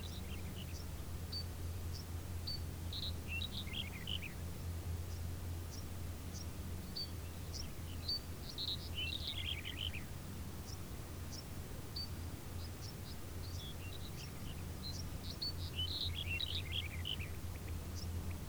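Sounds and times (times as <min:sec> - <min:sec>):
birds chirping in a field: 0:00.0 - 0:04.4, 0:05.0 - 0:18.4.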